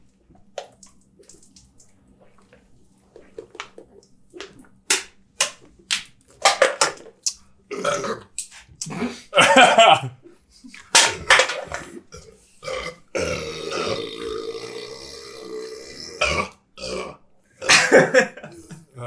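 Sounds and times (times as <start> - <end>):
loud drawn-out burp after shotgunning a beer: 7.7 - 8.3, 11.0 - 19.0
people talking: 8.8 - 10.9, 17.8 - 19.0
people laughing: 9.1 - 10.2, 17.7 - 19.0.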